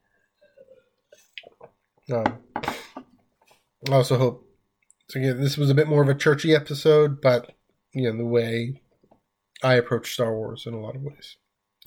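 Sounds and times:
person sipping a drink of water: 0.4s - 1.8s
speech: 2.1s - 2.5s, 3.9s - 4.5s, 5.1s - 8.8s, 9.6s - 11.8s.

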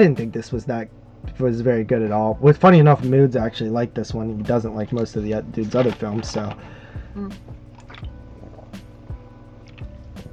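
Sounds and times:
speech: 0.0s - 7.6s
water sloshing: 0.0s - 10.3s
person gulping water: 4.0s - 10.2s.

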